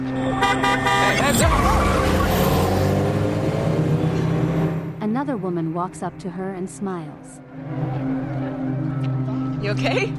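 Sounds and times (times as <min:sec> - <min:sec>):
car horn blaring with dropping pitch: 0:00.1 - 0:01.6
car rushing past at close range: 0:00.9 - 0:05.0
speech: 0:05.3 - 0:08.4, 0:09.6 - 0:10.1.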